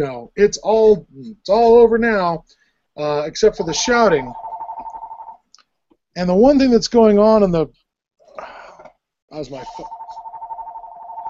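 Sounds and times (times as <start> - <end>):
speech: 0.0 - 4.4, 6.2 - 7.8, 9.3 - 10.0
telephone ringing: 3.7 - 5.4, 9.5 - 11.2.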